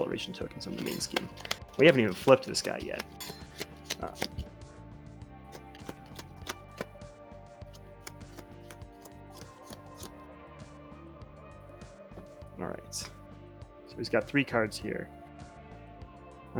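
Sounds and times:
speech: 0.0s - 4.5s, 14.0s - 15.2s
deck of cards shuffling: 0.6s - 4.5s, 5.5s - 7.0s, 7.7s - 10.2s.

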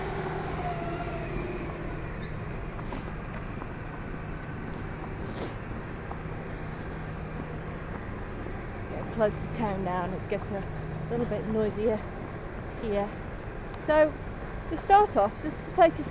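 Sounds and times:
heavy vehicle rumbling past with engine and road noise: 0.0s - 12.5s
speech: 9.2s - 12.1s, 12.8s - 13.2s, 13.9s - 16.0s.

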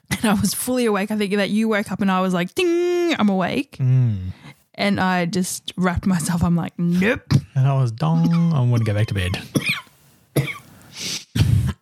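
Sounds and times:
speech: 0.2s - 9.7s
person coughing: 8.2s - 10.6s, 11.2s - 11.8s
raspy inhale: 10.6s - 11.3s.

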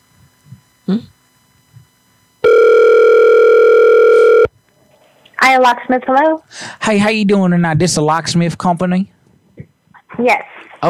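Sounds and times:
speech: 0.9s - 1.1s, 5.6s - 9.2s, 10.2s - 10.8s
telephone ringback tone: 2.4s - 4.5s.

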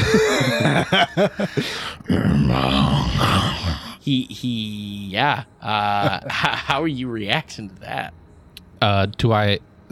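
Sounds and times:
laughter: 0.0s - 1.9s, 5.8s - 6.8s
speech: 0.8s - 8.2s, 8.8s - 9.9s
voice imitating a giant crocodile growl: 2.0s - 4.0s.

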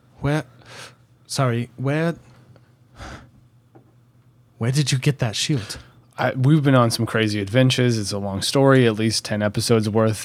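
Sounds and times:
speech: 1.3s - 2.3s, 4.6s - 10.2s
small breathy gasps: 3.0s - 3.4s.

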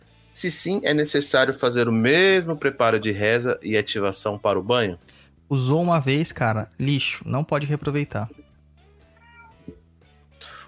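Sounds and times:
speech: 0.4s - 8.4s
cat meowing in a drawn-out wavering cry: 9.2s - 9.8s.

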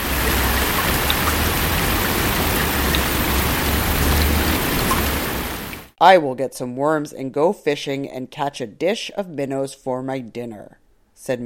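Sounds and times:
large raindrops splashing in a pond: 0.0s - 6.0s
speech: 6.0s - 11.4s.

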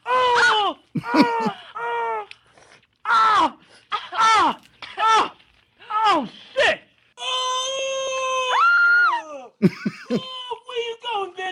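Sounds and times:
person screaming: 0.0s - 2.3s, 3.0s - 9.5s
laughter: 1.0s - 1.6s, 9.6s - 10.3s.

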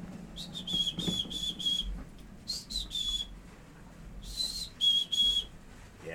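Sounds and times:
hiss: 0.0s - 6.1s
person whistling an imitation of a chickadee call: 0.4s - 3.3s, 4.2s - 5.5s.

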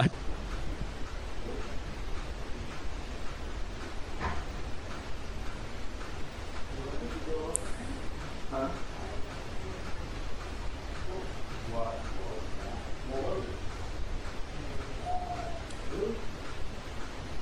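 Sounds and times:
steady hiss: 0.0s - 17.4s
owl-like hoot blown through cupped hands as a hand flute: 15.0s - 16.2s.

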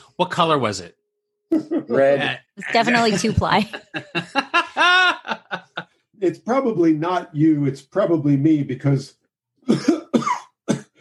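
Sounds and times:
speech: 0.2s - 5.6s, 6.2s - 10.0s
laughter: 1.5s - 7.2s
harsh raspy coughs: 9.6s - 10.9s.

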